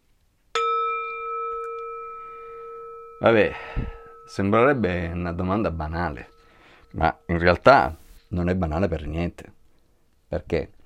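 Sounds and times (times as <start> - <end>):
service call bell ding at a restaurant kitchen pass: 0.6 - 7.9
speech: 3.2 - 6.3, 6.9 - 9.6, 10.3 - 10.8.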